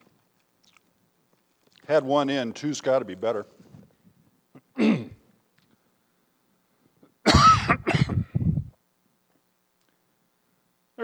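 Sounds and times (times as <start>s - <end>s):
speech: 1.9s - 3.6s
person clearing throat: 4.5s - 5.3s, 7.0s - 8.7s
person coughing harshly: 4.6s - 5.2s, 7.2s - 8.7s.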